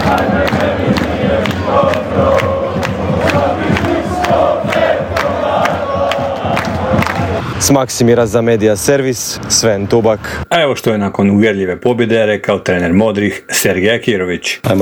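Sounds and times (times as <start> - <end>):
home-side football supporters singing in stadium after a win: 0.0 - 7.6
sharp rhythmic beats: 0.0 - 7.6
speech: 7.7 - 14.7.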